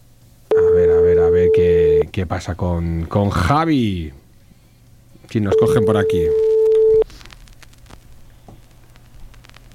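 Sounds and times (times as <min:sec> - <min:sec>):
low noise: 0:00.0 - 0:09.7
loud steady telephone ringback tone: 0:00.5 - 0:01.8, 0:05.5 - 0:07.0
speech: 0:02.2 - 0:04.2, 0:05.3 - 0:06.4.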